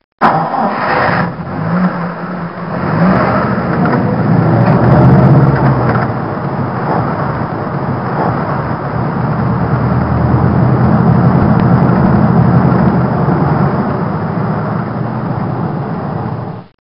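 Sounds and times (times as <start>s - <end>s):
jeep engine starting: 0.2s - 16.7s.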